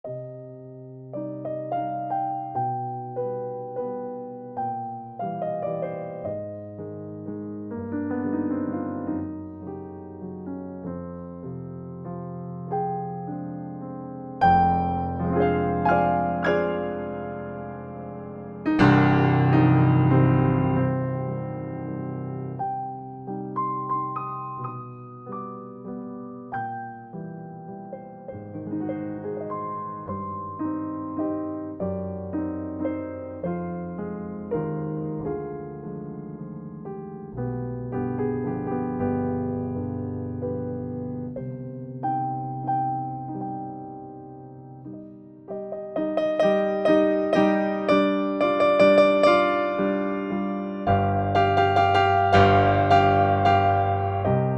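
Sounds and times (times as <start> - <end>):
grand piano: 0.0 - 54.5.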